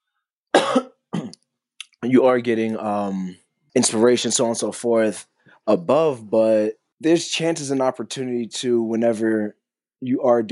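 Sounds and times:
person coughing: 0:00.5 - 0:01.4
speech: 0:02.1 - 0:10.5.

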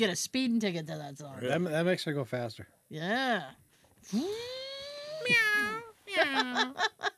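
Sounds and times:
speech: 0:00.0 - 0:04.6, 0:05.2 - 0:07.1
person imitating a cat's meow: 0:04.3 - 0:05.9.

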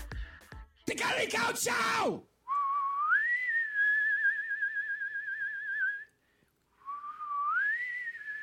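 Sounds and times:
speech: 0:00.9 - 0:02.3
person whistling a slow eerie tune: 0:02.5 - 0:08.4.

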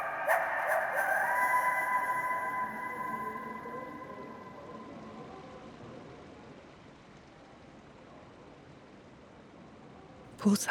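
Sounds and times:
coyote howling in falling snow: 0:00.0 - 0:04.9
speech: 0:10.4 - 0:10.6.

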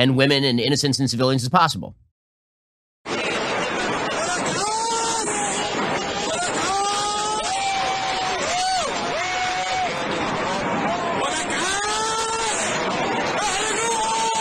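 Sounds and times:
speech: 0:00.0 - 0:02.1
crowd shouting and cheering: 0:03.1 - 0:14.3.

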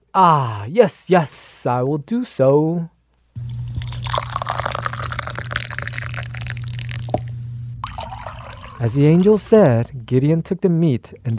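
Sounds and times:
speech: 0:00.2 - 0:03.6, 0:08.8 - 0:11.3
low hum: 0:02.7 - 0:11.3
broth pouring and dripping onto rock: 0:03.5 - 0:09.6.

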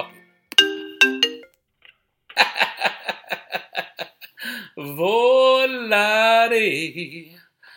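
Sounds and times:
mobile phone ringtone for an incoming scam call: 0:00.6 - 0:01.5
speech: 0:04.8 - 0:07.4.

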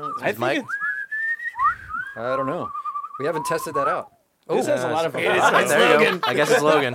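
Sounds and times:
band member whistling a short tune: 0:00.0 - 0:04.0
speech: 0:00.1 - 0:00.8, 0:02.2 - 0:06.9
laughter: 0:05.2 - 0:06.9.

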